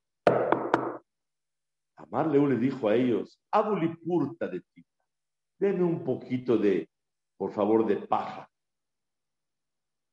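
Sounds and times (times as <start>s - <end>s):
firm knocks on a door: 0.3s - 1.0s
speech: 2.0s - 4.9s, 5.6s - 8.5s.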